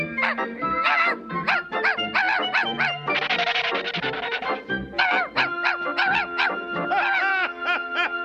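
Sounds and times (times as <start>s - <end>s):
small dog barking and yipping: 0.2s - 3.4s, 5.0s - 7.2s
laughter: 2.8s - 8.2s.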